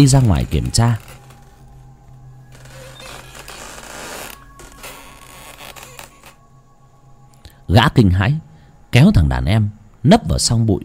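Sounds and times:
speech: 0.0 - 1.1, 7.7 - 10.8
old door hinge creaking: 0.0 - 6.5.

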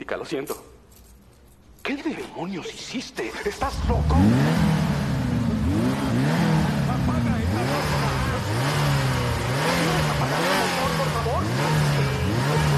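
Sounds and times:
speech: 0.1 - 0.8, 1.9 - 4.7
car engine revving: 3.6 - 12.7.

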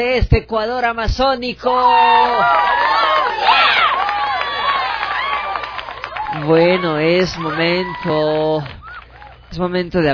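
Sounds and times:
speech: 0.0 - 3.6, 6.3 - 8.8, 9.5 - 10.1
crowd applause for entrepreneurs of the Ecuadorian Amazon: 2.3 - 9.8.

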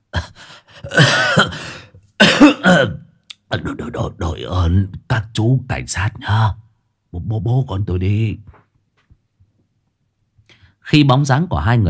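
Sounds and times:
old man coughing violently: 0.8 - 3.1
speech: 2.7 - 8.6, 10.9 - 11.8.

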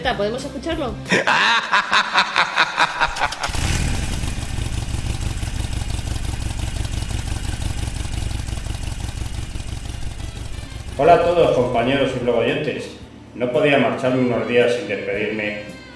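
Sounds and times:
speech: 0.0 - 2.6, 11.0 - 15.7
laughter: 1.1 - 3.6
motorcycle engine running: 2.5 - 13.3.

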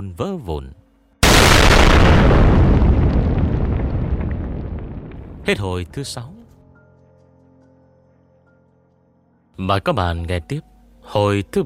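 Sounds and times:
speech: 0.0 - 0.8, 5.4 - 6.4, 9.6 - 11.6
massive explosion at the bottom of a deep mountain ravine: 1.2 - 6.0.

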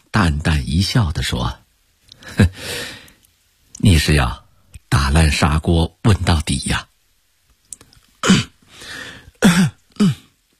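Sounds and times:
speech: 0.1 - 1.6, 3.8 - 6.9
man coughing softly: 8.2 - 8.6, 9.4 - 10.4.

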